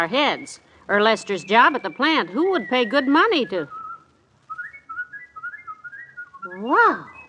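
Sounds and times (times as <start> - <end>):
speech: 0.0 - 3.8, 6.6 - 7.2
person whistling a lilting melody: 1.8 - 7.2.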